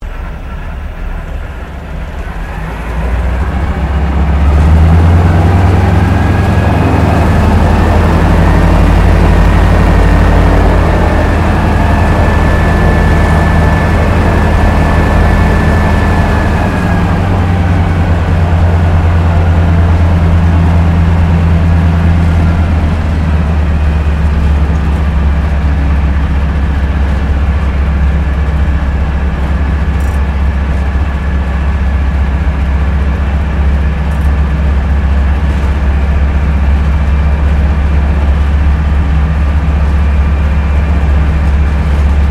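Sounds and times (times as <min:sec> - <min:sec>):
Harvard Mk III propeller aircraft taxiing heard from the interior: 0:00.0 - 0:42.2.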